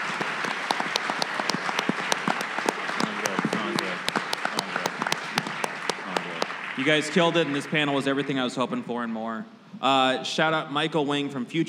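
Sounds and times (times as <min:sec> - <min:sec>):
audience applause for panelists: 0:00.0 - 0:08.6
speech: 0:06.8 - 0:11.6.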